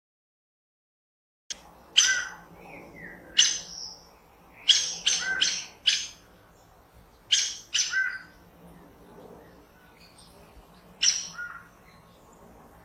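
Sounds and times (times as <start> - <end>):
saffron toucan uttering rasping high squeaky notes: 2.0 - 2.4, 3.4 - 3.9, 4.6 - 6.2, 7.3 - 8.4, 11.0 - 11.7.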